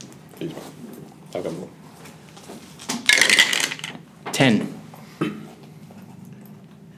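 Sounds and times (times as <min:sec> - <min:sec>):
speech: 0:00.4 - 0:00.7, 0:01.3 - 0:01.8, 0:04.4 - 0:04.8
dice clattering and rattling across a tabletop: 0:03.1 - 0:04.0.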